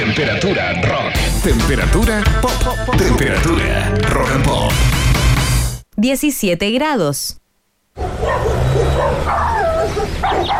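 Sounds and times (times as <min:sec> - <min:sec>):
speech: 0:00.2 - 0:05.0, 0:06.0 - 0:07.4
several neighbors' dogs barking and yipping: 0:08.0 - 0:10.5.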